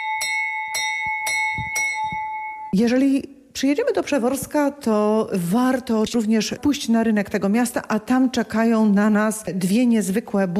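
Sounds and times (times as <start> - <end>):
fire brigade bell ringing: 0.0 - 2.8
speech: 2.7 - 10.5.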